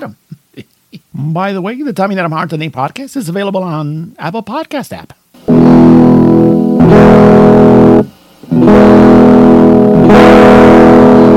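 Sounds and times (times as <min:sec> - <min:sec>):
speech: 0:00.0 - 0:00.2, 0:01.2 - 0:05.6
loud heavily distorted sustained tones with a harsh buzzing edge: 0:05.4 - 0:11.3.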